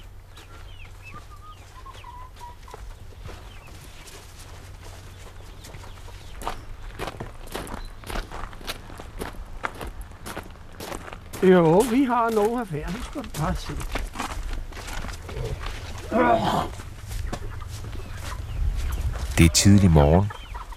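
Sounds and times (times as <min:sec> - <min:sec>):
chickens clucking at a smallholding in South Zealand: 0:00.0 - 0:07.3, 0:15.0 - 0:20.7
crunching footsteps of a man walking out to the chickens: 0:00.4 - 0:16.1, 0:16.7 - 0:19.8
speech: 0:11.4 - 0:14.0, 0:16.1 - 0:16.8, 0:19.4 - 0:20.4.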